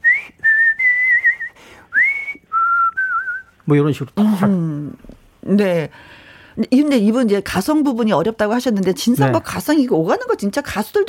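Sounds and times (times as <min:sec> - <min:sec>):
whistled melody: 0:00.0 - 0:03.5
speech: 0:03.7 - 0:11.0.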